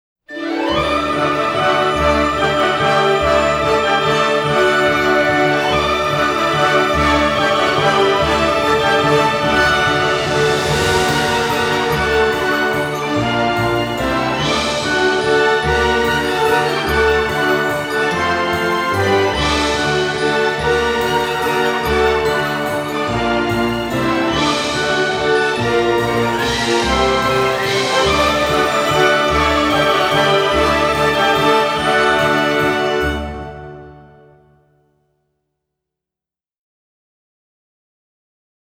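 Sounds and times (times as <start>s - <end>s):
heroic fanfare: 0.3s - 34.6s.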